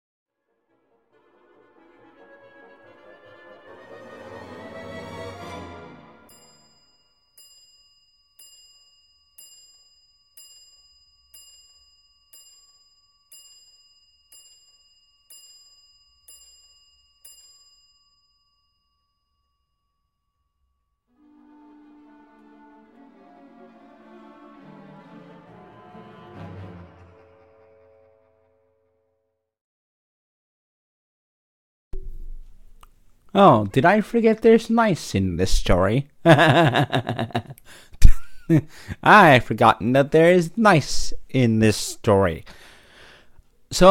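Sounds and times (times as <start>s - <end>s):
music: 0.3s - 6.8s, 21.1s - 29.4s
mantel clock over a fireplace chiming: 6.3s - 20.8s
speech: 33.4s - 37.9s, 38.5s - 42.7s
laughter: 36.3s - 38.7s.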